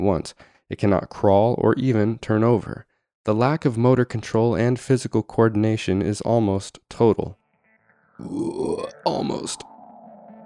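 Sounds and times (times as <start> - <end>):
speech: 0.0 - 7.4, 8.2 - 9.7
loud drawn-out throaty burp: 8.2 - 9.5.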